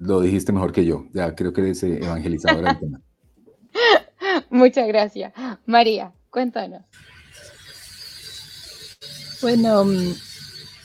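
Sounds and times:
speech: 0:00.0 - 0:03.1, 0:04.5 - 0:07.1, 0:09.4 - 0:10.3
laughter: 0:02.0 - 0:03.0
cicadas buzzing: 0:06.9 - 0:10.8.

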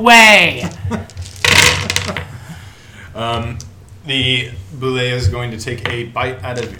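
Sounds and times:
speech: 0:00.0 - 0:01.0, 0:03.2 - 0:06.7
dice from a green and black set clattering onto a table: 0:01.1 - 0:02.3.

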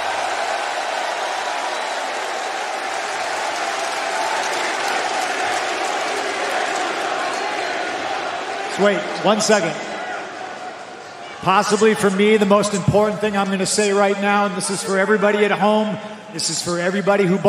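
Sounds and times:
large arena crowd applauding: 0:00.0 - 0:09.4
large arena crowd cheering: 0:00.0 - 0:17.0
speech: 0:08.8 - 0:09.9, 0:11.4 - 0:17.4.

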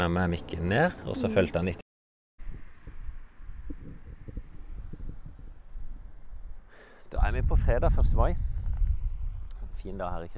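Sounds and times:
speech: 0:00.0 - 0:01.8, 0:07.1 - 0:08.5, 0:09.8 - 0:10.3
light outdoor wind buffeting the microphone: 0:02.4 - 0:10.3.

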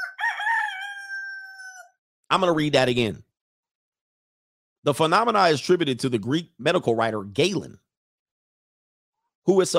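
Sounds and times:
rooster crowing: 0:00.0 - 0:02.0
speech: 0:02.3 - 0:03.3, 0:04.8 - 0:07.8, 0:09.4 - 0:09.7.

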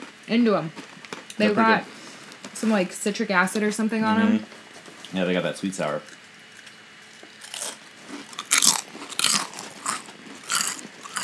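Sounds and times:
speech: 0:00.3 - 0:02.0, 0:02.6 - 0:06.2
crisp taco-flavored chips being bitten and chewed: 0:06.0 - 0:11.2.

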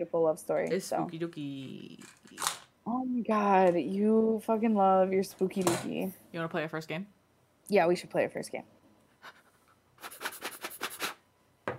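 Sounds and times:
speech: 0:00.0 - 0:09.4
person blowing on dice before a roll: 0:09.2 - 0:11.2.

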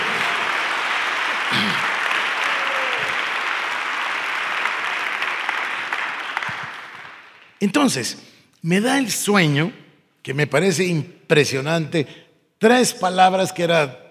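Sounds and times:
large audience applause: 0:00.0 - 0:07.6
speech: 0:07.6 - 0:14.0.

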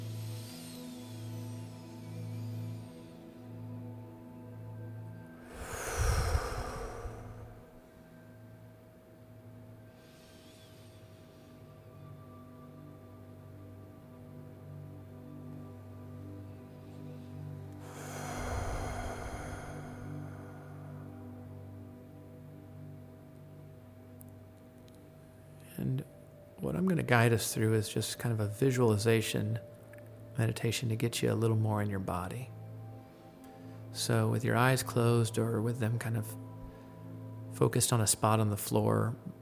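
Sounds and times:
steady low droning background: 0:00.0 - 0:10.1, 0:11.7 - 0:39.4
forceful breathy exhales during guided meditation: 0:05.4 - 0:07.8, 0:17.8 - 0:21.2
speech: 0:26.8 - 0:29.7, 0:30.4 - 0:32.6, 0:34.0 - 0:36.4, 0:37.6 - 0:39.3.

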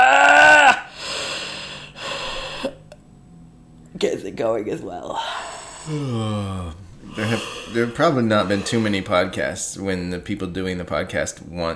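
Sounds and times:
person letting out a big exaggerated fake yawn: 0:00.0 - 0:02.9, 0:05.1 - 0:07.8
speech: 0:04.0 - 0:11.7.

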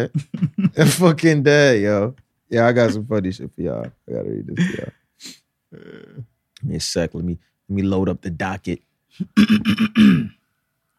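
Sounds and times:
speech: 0:00.0 - 0:10.4
person clearing throat: 0:09.2 - 0:10.4.

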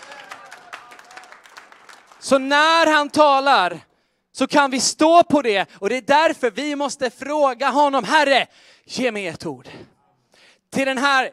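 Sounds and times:
audience applauding: 0:00.0 - 0:03.2
speech: 0:02.2 - 0:09.9, 0:10.7 - 0:11.3.

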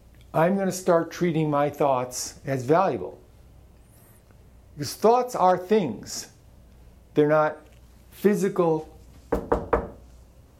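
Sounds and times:
speech: 0:00.3 - 0:03.2, 0:04.8 - 0:06.3, 0:07.2 - 0:07.6, 0:08.2 - 0:09.6
knocking on a hard surface: 0:09.3 - 0:10.0.

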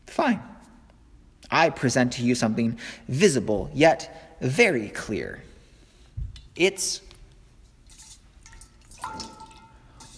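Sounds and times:
speech: 0:01.5 - 0:05.5, 0:06.6 - 0:07.1
steady background of trickling water: 0:07.9 - 0:10.1
clear ringing drop of plain water: 0:09.0 - 0:09.8.

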